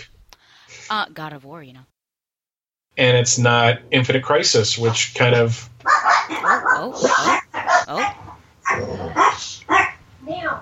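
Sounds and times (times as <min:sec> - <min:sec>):
speech: 0:00.9 - 0:01.9, 0:03.0 - 0:10.6
dogs barking and yipping: 0:04.8 - 0:10.1.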